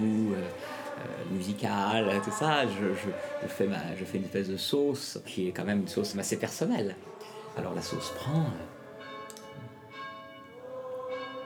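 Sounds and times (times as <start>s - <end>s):
speech: 1.4s - 8.8s
church bell ringing: 7.6s - 11.4s.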